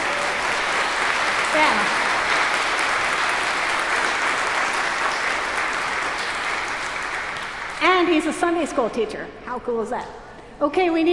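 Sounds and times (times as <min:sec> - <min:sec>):
audience applauding a teacher: 0:00.0 - 0:08.5
speech: 0:01.6 - 0:02.0, 0:08.0 - 0:11.1.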